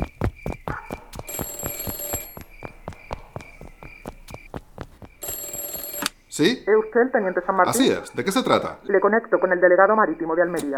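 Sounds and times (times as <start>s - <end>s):
office telephone bell ringing: 1.3s - 2.5s, 5.2s - 6.2s
speech: 6.4s - 10.7s.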